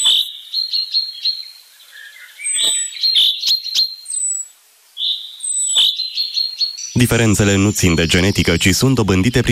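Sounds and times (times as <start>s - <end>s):
chaffinch song trills: 0.0s - 9.2s
speech: 7.0s - 9.5s.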